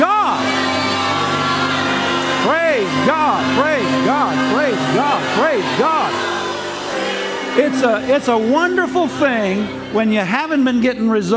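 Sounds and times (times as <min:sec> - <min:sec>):
audience shouting and whooping in worship: 0:00.0 - 0:10.0
speech: 0:07.6 - 0:11.3.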